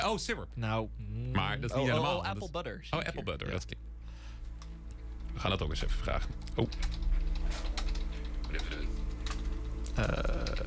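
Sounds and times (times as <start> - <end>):
speech: 0.0 - 3.9, 5.4 - 7.7, 8.5 - 9.0, 10.0 - 10.6
low steady hum: 0.0 - 10.6
computer keyboard typing: 6.4 - 10.6.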